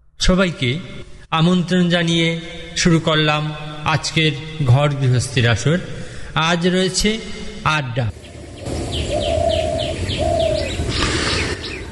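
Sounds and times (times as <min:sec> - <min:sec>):
speech: 0:00.3 - 0:08.8
many quick high chirps from other birds: 0:08.0 - 0:11.9
dove cooing near a paddy field: 0:08.6 - 0:11.9.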